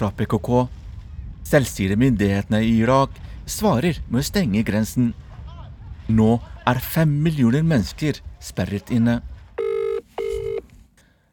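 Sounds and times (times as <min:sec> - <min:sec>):
speech: 0:00.0 - 0:00.8, 0:01.4 - 0:05.2, 0:06.1 - 0:09.3
telephone ringback tones of an outgoing phone call: 0:09.6 - 0:10.6.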